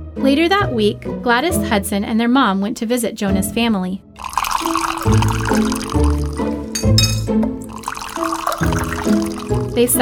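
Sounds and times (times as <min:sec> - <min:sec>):
speech: 0:00.2 - 0:06.1, 0:09.8 - 0:10.0
hot mint tea poured from a height into glasses: 0:04.2 - 0:10.0.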